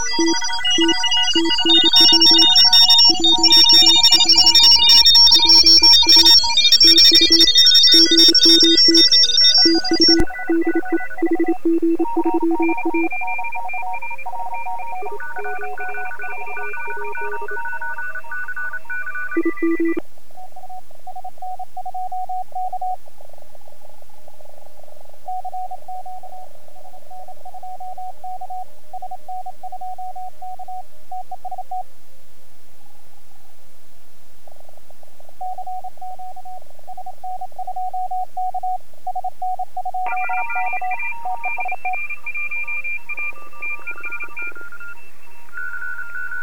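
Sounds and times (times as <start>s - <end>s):
CW contest morse signals through a mixed filter: 0.0s - 23.0s, 35.5s - 46.4s.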